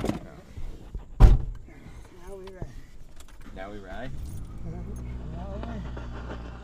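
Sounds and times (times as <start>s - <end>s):
truck door shutting: 1.2s - 1.6s
truck engine starting and idling: 3.5s - 6.6s
keys jangling: 4.1s - 5.1s.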